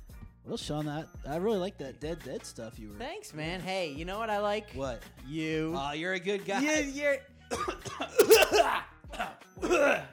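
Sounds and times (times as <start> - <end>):
speech: 0.5 - 8.9, 9.6 - 10.1
person coughing: 8.2 - 8.5.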